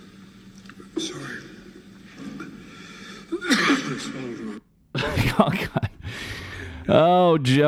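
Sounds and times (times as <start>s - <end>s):
laughter: 2.1s - 6.9s
man coughing raspily at a hospital in East Jerusalem: 2.2s - 6.0s
speech: 3.9s - 6.3s, 6.9s - 7.6s.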